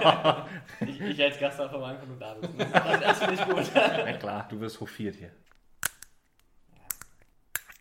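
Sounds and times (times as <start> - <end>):
laughter: 0.0 - 4.5
speech: 0.0 - 5.6
small screw-cap sample bottle being twisted open: 5.5 - 7.7.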